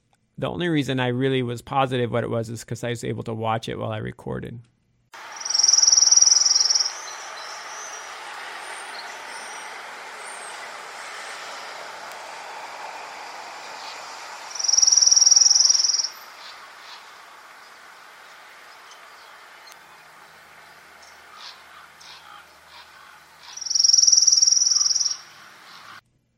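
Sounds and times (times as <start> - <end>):
speech: 0.4 - 4.7
soft outdoor hiss: 4.6 - 26.0
orange-crowned warbler trill: 5.2 - 26.0.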